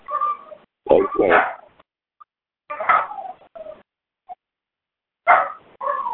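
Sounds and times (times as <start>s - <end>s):
dogs howling and whining for owner: 0.1s - 1.7s, 2.7s - 3.8s, 5.3s - 6.1s
faint dog yips: 0.1s - 1.7s, 2.7s - 4.4s, 5.3s - 6.1s
speech: 1.2s - 1.6s.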